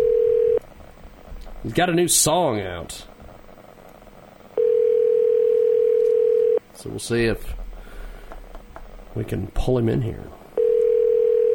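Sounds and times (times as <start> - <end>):
steady loud telephone dial tone while placing a phone call: 0.0 - 0.6, 4.6 - 6.6, 10.6 - 11.5
speech: 1.6 - 3.1, 6.8 - 7.6, 9.2 - 10.4.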